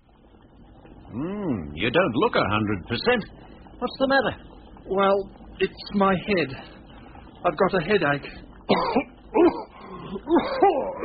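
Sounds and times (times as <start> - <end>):
speech: 1.1 - 6.8, 7.4 - 9.6, 10.3 - 11.0
person coughing hoarsely: 8.7 - 10.8.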